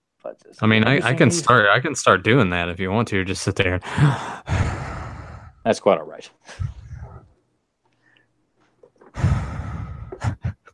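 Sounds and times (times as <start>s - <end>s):
speech: 0.2s - 4.6s, 5.6s - 6.8s
heavy breathing into the microphone: 3.8s - 5.7s, 6.4s - 7.4s, 9.0s - 10.7s.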